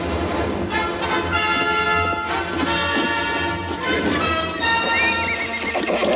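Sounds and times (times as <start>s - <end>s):
horse hooves clattering down a steep embankment: 0.2s - 6.1s
horse whinnying as a rider spurs it down a steep embankment: 3.0s - 6.1s.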